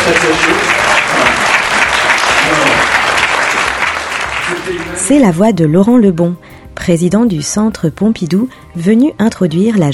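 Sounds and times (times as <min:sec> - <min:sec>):
audience applauding in a conference hall at the Centre Pompidou: 0:00.0 - 0:05.2
speech: 0:00.1 - 0:01.4, 0:04.5 - 0:09.9.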